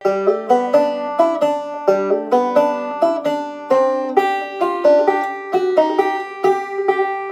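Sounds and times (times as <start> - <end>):
banjo playing rag syncopation and chromatic bar shapes: 0.0 - 7.3.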